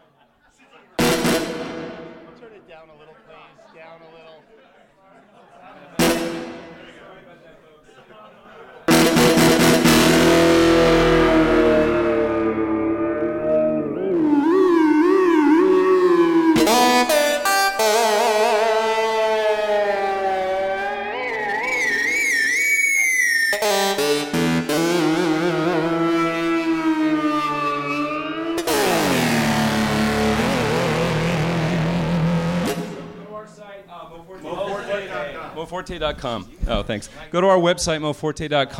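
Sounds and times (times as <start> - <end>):
modeled heavily distorted electric guitar tones: 1.0 - 2.4, 6.0 - 7.0, 8.9 - 33.3
modeled wavering guitar feedback squeals: 9.1 - 33.0
speech: 35.9 - 38.7.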